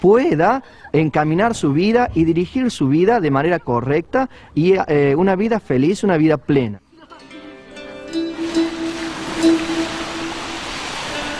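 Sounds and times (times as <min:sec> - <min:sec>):
speech: 0:00.0 - 0:06.8
lake water lapping against the shore: 0:08.2 - 0:11.3.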